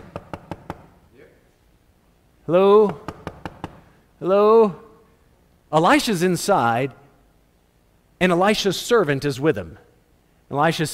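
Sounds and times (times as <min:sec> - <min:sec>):
knocking on a door: 0:00.0 - 0:00.9, 0:03.0 - 0:03.8
speech: 0:02.5 - 0:03.1, 0:04.2 - 0:04.8, 0:05.7 - 0:07.0, 0:08.2 - 0:09.8, 0:10.5 - 0:10.9.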